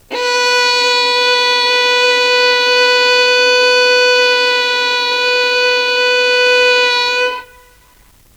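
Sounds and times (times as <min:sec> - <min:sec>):
violin: 0:00.0 - 0:07.9.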